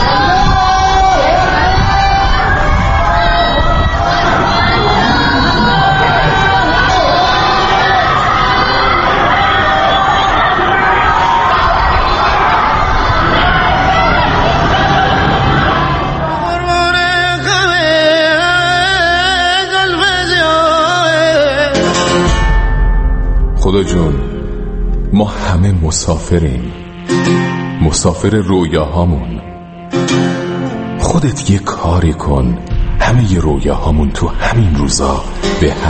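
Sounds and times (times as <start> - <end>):
crowd of protesters shouting at night in Iran: 0.0 - 16.7
music: 0.0 - 35.8
speech: 25.9 - 29.5, 31.1 - 35.8.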